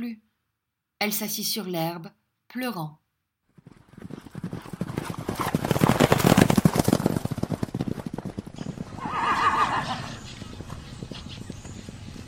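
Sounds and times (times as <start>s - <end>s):
speech: 0.0s - 0.3s, 1.0s - 3.0s
saddled Spanish horse hooves clip-clopping: 3.5s - 12.2s
saddled Spanish horse whinnying: 8.9s - 10.3s.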